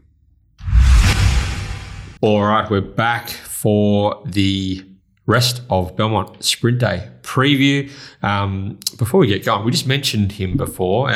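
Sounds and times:
swoosh transition sound effect with deep rumbling low end: 0:00.6 - 0:02.2
speech: 0:02.2 - 0:11.1.

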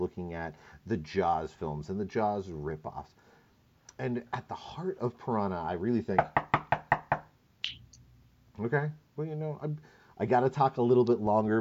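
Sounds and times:
speech: 0:00.0 - 0:03.3, 0:04.0 - 0:06.5, 0:08.6 - 0:11.5
knocking on a door: 0:06.2 - 0:07.3.

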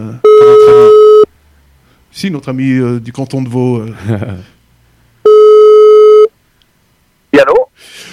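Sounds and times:
telephone ringback tone of an outgoing call: 0:00.3 - 0:01.3, 0:05.3 - 0:06.3
speech: 0:02.2 - 0:04.6
laughter: 0:03.9 - 0:04.5.

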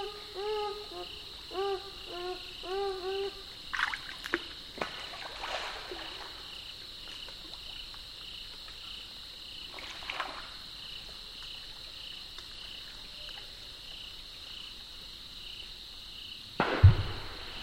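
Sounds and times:
high buzzing chorus of crickets and insects: 0:00.0 - 0:17.6
beaver tail slapping the water of a swamp: 0:03.7 - 0:06.5, 0:09.7 - 0:10.6.

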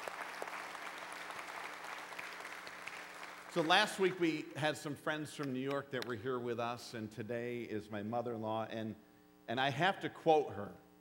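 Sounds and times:
room full of people applauding: 0:00.0 - 0:04.1
speech: 0:03.6 - 0:10.8.

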